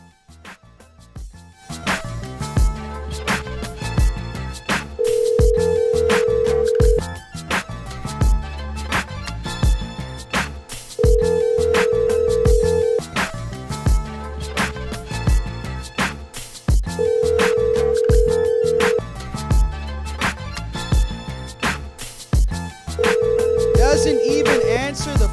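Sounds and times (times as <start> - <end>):
continuous music bed: 0.0 - 25.3
phone ringback tones on an outgoing call: 5.0 - 7.0, 11.0 - 13.0, 17.0 - 19.1, 23.0 - 25.0.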